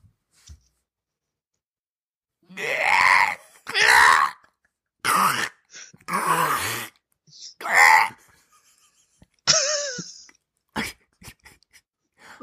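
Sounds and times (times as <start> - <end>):
person imitating a velociraptor screech: 2.5 - 4.4, 5.2 - 8.2.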